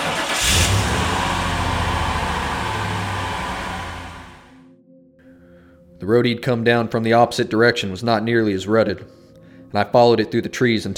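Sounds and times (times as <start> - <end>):
car engine cranking and catching with a brief rev: 0.0 - 4.5
speech: 6.1 - 10.9.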